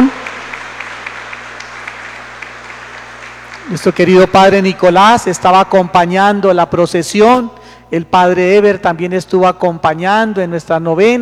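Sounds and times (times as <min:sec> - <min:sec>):
church congregation applause after a candle-lit procession: 0:00.0 - 0:06.1
speech: 0:03.7 - 0:11.2.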